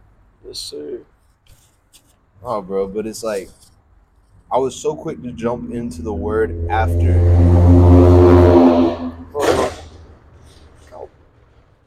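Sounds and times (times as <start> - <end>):
speech: 0.4 - 1.6, 2.4 - 3.7, 4.5 - 8.4
cars passing and revving outside: 4.6 - 10.1.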